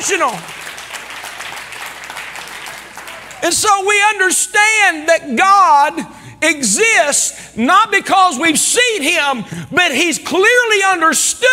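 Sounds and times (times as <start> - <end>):
speech: 0.0 - 0.6, 3.4 - 11.5
audience clapping: 0.0 - 3.6.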